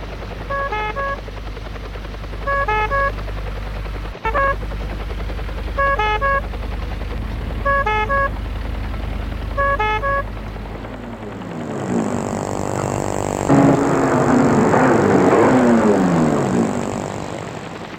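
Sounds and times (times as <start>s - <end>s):
helicopter idling on a lawn: 0.0s - 17.9s.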